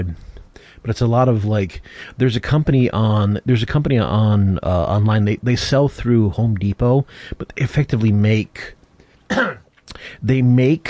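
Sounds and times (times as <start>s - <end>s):
speech: 0.0s - 10.8s
dry cough: 9.3s - 9.7s.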